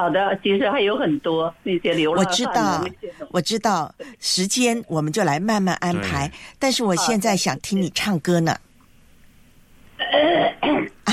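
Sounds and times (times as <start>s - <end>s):
speech: 0.0s - 8.7s
person clearing throat: 10.0s - 11.1s.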